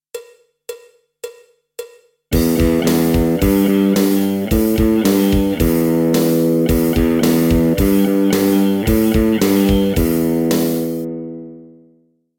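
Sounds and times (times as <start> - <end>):
metal rock lick on electric guitars: 2.3 - 11.5.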